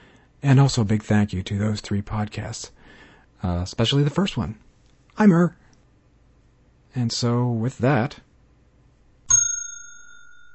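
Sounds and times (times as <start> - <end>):
speech: 0.4 - 4.6, 5.2 - 5.6, 6.9 - 8.3
trading bell struck once: 9.3 - 10.5.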